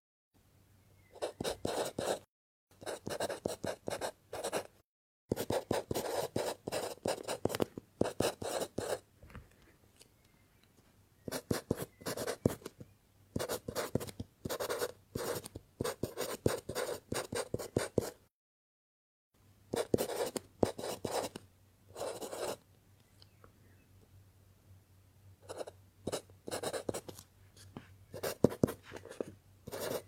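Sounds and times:
pencil scratching across paper: 0:01.2 - 0:04.7, 0:05.3 - 0:09.0, 0:11.3 - 0:12.7, 0:13.4 - 0:18.2, 0:19.8 - 0:21.4, 0:22.0 - 0:22.6, 0:25.5 - 0:27.2, 0:28.2 - 0:30.0.

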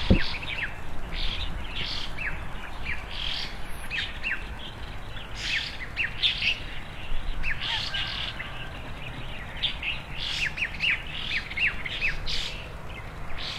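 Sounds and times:
birds chirping on branches in front of a country house: 0:00.0 - 0:13.5
steady low rumbling background noise: 0:00.0 - 0:13.5.

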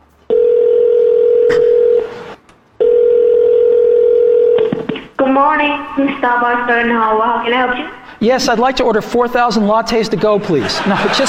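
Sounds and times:
ringback tone of a call from an iPhone to a coffee shop: 0:00.3 - 0:04.8
speech: 0:05.4 - 0:11.2
laughter: 0:10.3 - 0:11.2.

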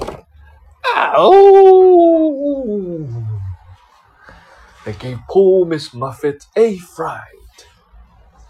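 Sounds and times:
person imitating a wolf howl: 0:00.8 - 0:03.7
speech: 0:01.1 - 0:01.6, 0:04.9 - 0:07.7.

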